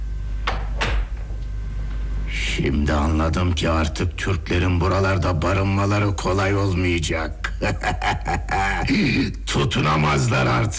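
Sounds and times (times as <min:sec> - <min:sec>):
hum: 0:00.0 - 0:10.7
door being closed: 0:00.5 - 0:01.3
speech: 0:02.6 - 0:10.7
laughter: 0:07.4 - 0:09.3.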